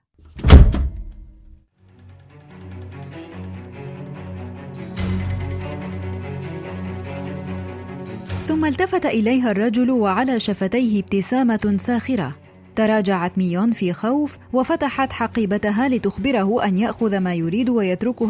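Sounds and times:
heavy door being pushed shut and locked: 0.4 - 1.4
steady tense musical backdrop: 1.8 - 18.2
speech: 8.5 - 18.2.

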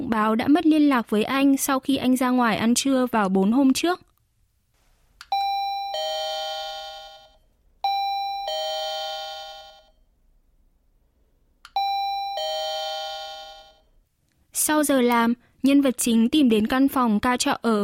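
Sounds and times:
speech: 0.1 - 4.1, 14.6 - 17.8
two-tone ding-dong doorbell of a rented room: 5.3 - 10.0, 11.8 - 13.9.

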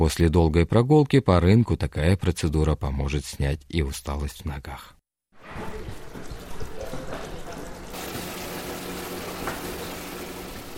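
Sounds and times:
speech: 0.0 - 5.8
warm water pouring into a small foot bath at a market: 5.4 - 10.7.

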